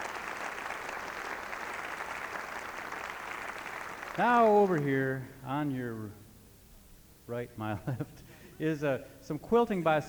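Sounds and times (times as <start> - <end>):
room full of people clapping steadily: 0.0 - 5.2
speech: 4.2 - 6.2, 7.3 - 10.0.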